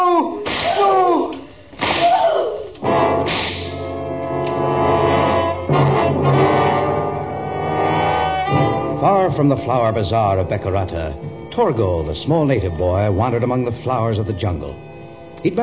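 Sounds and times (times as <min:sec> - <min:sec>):
whip cracks: 0:00.5 - 0:01.1, 0:01.8 - 0:02.5, 0:03.3 - 0:03.9
dramatic orchestral music: 0:02.8 - 0:15.6
speech: 0:09.4 - 0:15.6.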